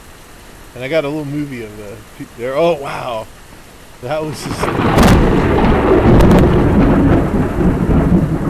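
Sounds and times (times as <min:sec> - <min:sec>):
pouring rain: 0:00.0 - 0:08.4
speech: 0:00.7 - 0:03.4, 0:04.0 - 0:06.4
close thunder clap with heavy rolling rumble: 0:04.3 - 0:08.4.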